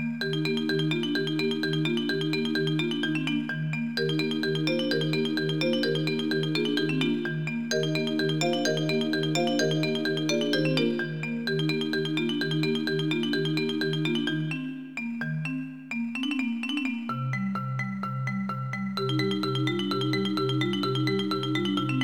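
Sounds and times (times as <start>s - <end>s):
cheerful marimba: 0.2s - 22.0s
chiptune music: 4.2s - 14.7s.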